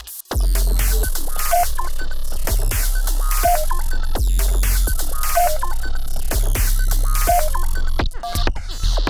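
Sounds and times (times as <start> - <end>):
synthesized sine wave beats: 0.4 - 9.0.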